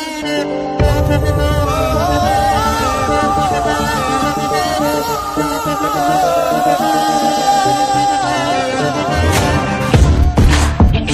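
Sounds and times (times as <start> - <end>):
ringtone theme melody: 0.3 - 11.0.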